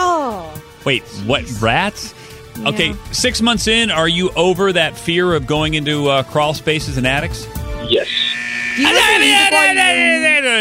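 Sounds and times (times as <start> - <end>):
speech: 0.8 - 8.2, 8.8 - 10.5
harsh electronic timer buzzer: 7.8 - 10.5.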